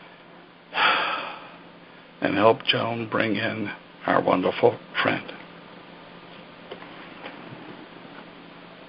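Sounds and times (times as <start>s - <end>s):
deep breath during a guided group relaxation: 0.7s - 2.1s
speech: 2.2s - 5.4s.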